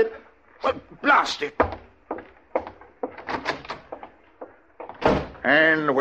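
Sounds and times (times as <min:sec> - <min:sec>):
speech: 0:00.0 - 0:01.9, 0:05.4 - 0:05.9
wooden door being opened and shut: 0:02.6 - 0:04.2, 0:04.8 - 0:05.5
door latch rattling: 0:02.7 - 0:04.2.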